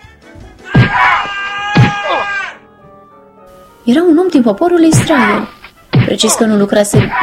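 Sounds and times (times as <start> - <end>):
man crying out and groaning in pain while whipped: 0.7 - 2.6
speech: 3.9 - 7.2.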